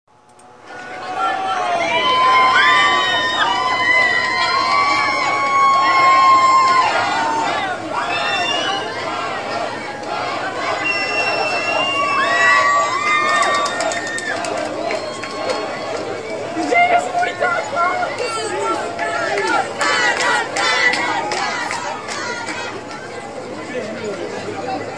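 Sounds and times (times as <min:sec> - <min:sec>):
crowd cheering in greeting at a festival: 0:00.2 - 0:24.9.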